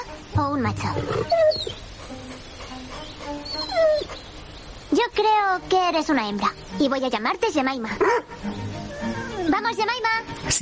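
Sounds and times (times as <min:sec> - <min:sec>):
low hiss: 0:00.0 - 0:10.6
speech: 0:00.3 - 0:01.8, 0:05.1 - 0:10.6
dog whimpering with whines and short yips: 0:01.0 - 0:01.8, 0:03.2 - 0:04.2, 0:08.0 - 0:09.6.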